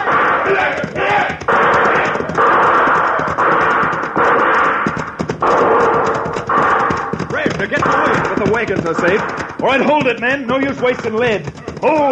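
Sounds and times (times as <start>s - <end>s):
people shouting: 0.0s - 4.8s
several horses galloping in a western posse chase: 0.0s - 12.1s
speech: 7.8s - 12.1s.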